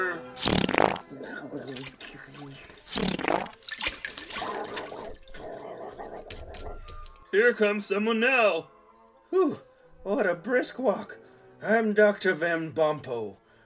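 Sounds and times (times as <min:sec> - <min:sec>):
wet squelchy liquefying transformation effect: 0:00.4 - 0:05.7
watery bubbling and sloshing: 0:00.5 - 0:07.0
speech: 0:01.2 - 0:03.4, 0:07.3 - 0:13.4.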